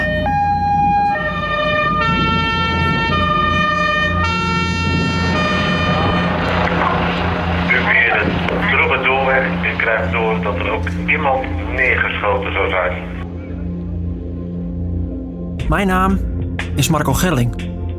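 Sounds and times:
rumble of traffic: 0:00.0 - 0:14.4
several two-tone emergency sirens wailing: 0:00.0 - 0:15.4
crowded street noise: 0:05.5 - 0:13.2
speech: 0:11.9 - 0:13.1, 0:15.7 - 0:17.7.

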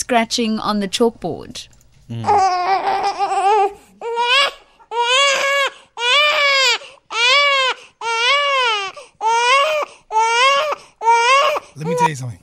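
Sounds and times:
speech: 0:00.1 - 0:03.2, 0:12.1 - 0:12.4
baby crying on an airplane flight: 0:02.2 - 0:12.1.

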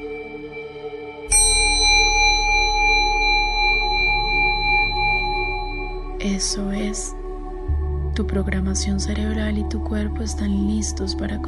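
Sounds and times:
steady low hum: 0:00.0 - 0:11.4
meditation bell ringing: 0:01.3 - 0:07.1
speech: 0:06.4 - 0:07.2, 0:08.2 - 0:11.4.

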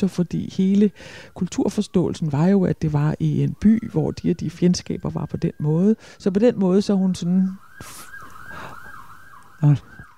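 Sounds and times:
speech: 0:00.0 - 0:08.1, 0:09.6 - 0:10.0
wailing emergency vehicle siren from the street: 0:00.0 - 0:10.1.

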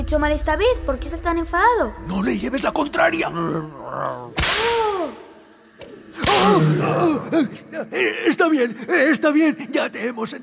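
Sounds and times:
speech: 0:00.1 - 0:04.8, 0:05.8 - 0:10.4
whip cracking against the floor: 0:04.4 - 0:05.0.

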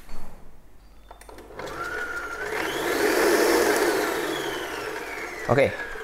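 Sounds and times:
electric stand mixer beating a batter: 0:01.3 - 0:06.0.

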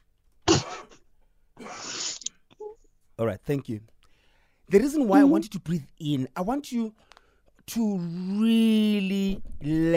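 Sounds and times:
person coughing: 0:00.4 - 0:01.0
speech: 0:03.2 - 0:03.9, 0:04.7 - 0:07.1, 0:07.7 - 0:09.9.

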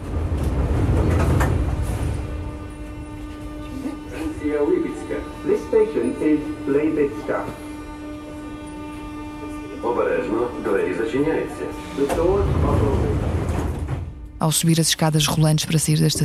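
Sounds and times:
train carriage sliding doors: 0:00.0 - 0:03.7, 0:11.8 - 0:14.2
moving train carriage rumble and hum in Ukraine: 0:00.0 - 0:16.2
passengers talking in a train carriage: 0:03.5 - 0:08.5, 0:09.5 - 0:13.2, 0:14.4 - 0:16.2
speech: 0:06.2 - 0:07.7, 0:09.9 - 0:13.6, 0:14.4 - 0:16.2.

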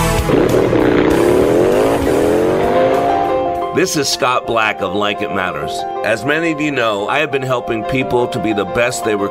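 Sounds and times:
motorcycle engines roaring at a motorcycle rally in Sturgis South Dakota: 0:00.2 - 0:03.8
speech: 0:00.3 - 0:01.4, 0:03.8 - 0:09.2.

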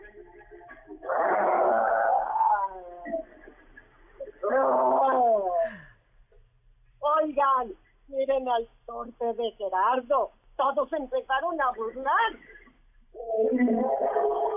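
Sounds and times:
lion-like roars: 0:01.0 - 0:03.3, 0:04.4 - 0:05.6
speech: 0:08.5 - 0:12.5, 0:13.3 - 0:14.4.

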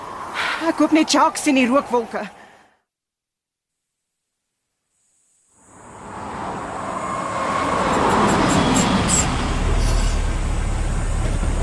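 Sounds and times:
car road noise: 0:00.0 - 0:02.7, 0:05.5 - 0:11.6
speech: 0:00.6 - 0:02.4
car engine deep low rumble while driving: 0:05.7 - 0:11.6.

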